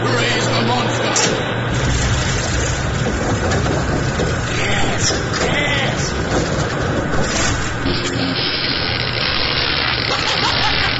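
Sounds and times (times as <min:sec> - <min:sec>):
fictional biogenic generator powering up at maximum power: 0:00.0 - 0:10.9
laughter: 0:10.0 - 0:10.9.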